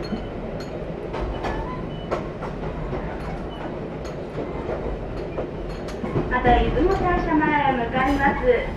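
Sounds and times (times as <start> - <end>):
limited express train wheel clicks and clatters: 0.0 - 7.5
limited express train rumbling along the rails: 0.0 - 8.7
speech: 6.4 - 8.7.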